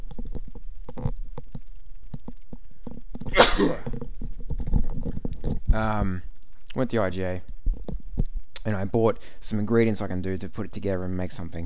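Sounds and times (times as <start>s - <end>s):
quiet shuffling: 0.0s - 11.6s
person sneezing: 3.3s - 3.9s
speech: 5.8s - 7.5s, 8.6s - 11.6s.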